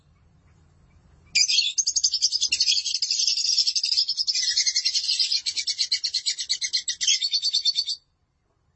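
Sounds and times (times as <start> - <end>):
lovebird high-pitched twittering chatter: 1.3 - 8.0.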